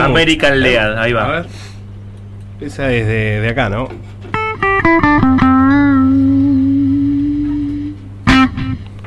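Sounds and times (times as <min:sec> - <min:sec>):
speech: 0:00.1 - 0:01.7, 0:02.6 - 0:05.0
distorted electric guitar through amp simulator with noise suppressor: 0:04.3 - 0:09.0.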